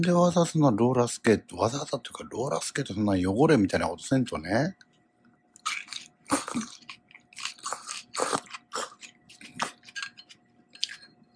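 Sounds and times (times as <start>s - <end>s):
speech: 0.0s - 4.9s, 5.6s - 6.9s
crunchy biting and chewing of bean sprouts: 5.6s - 11.3s.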